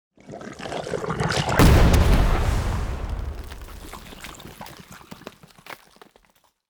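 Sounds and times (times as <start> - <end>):
muddy ooze explosion: 0.6 - 5.5.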